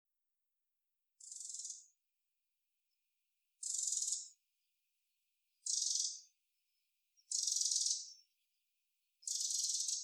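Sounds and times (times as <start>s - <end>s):
Eurasian wren harsh rattle calls: 1.2s - 1.9s, 3.6s - 4.3s, 5.6s - 6.2s, 7.3s - 8.2s, 9.2s - 10.0s.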